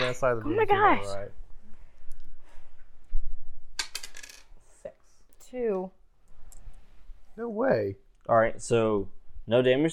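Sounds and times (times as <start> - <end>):
speech: 0.1 - 1.4, 5.5 - 6.0, 7.4 - 9.9
small die rolled for armor in a tabletop game clattering onto a hard tabletop: 3.8 - 4.5.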